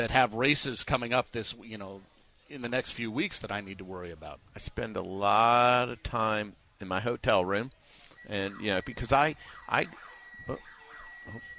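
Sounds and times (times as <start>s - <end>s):
speech: 0.0s - 10.7s, 11.3s - 11.5s
siren at a horse racetrack warning of a loose horse: 8.1s - 11.5s.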